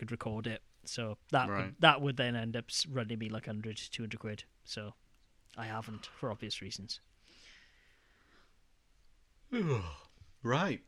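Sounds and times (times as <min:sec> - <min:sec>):
speech: 0:00.0 - 0:07.1, 0:09.5 - 0:10.8
person yawning: 0:09.5 - 0:10.1.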